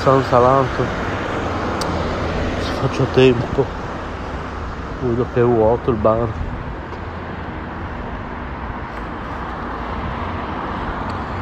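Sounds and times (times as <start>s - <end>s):
speech: 0.0s - 1.0s, 2.8s - 3.8s, 5.0s - 6.4s
buses speeding past on a road in Italy: 0.0s - 11.4s.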